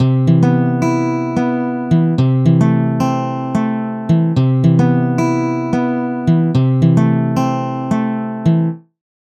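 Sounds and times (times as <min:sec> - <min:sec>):
Cmaj7 and C6 chords: 0:00.0 - 0:08.8.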